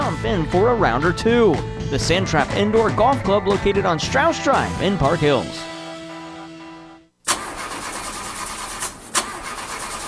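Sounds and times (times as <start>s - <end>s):
car engine cranking but failing to start: 0.0s - 5.2s, 7.2s - 10.0s
speech: 0.2s - 5.7s.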